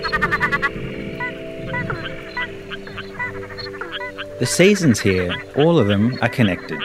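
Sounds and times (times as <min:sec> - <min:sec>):
frogs calling during the wet season: 0:00.0 - 0:06.8
steady drone: 0:00.0 - 0:06.8
speech: 0:04.4 - 0:06.8.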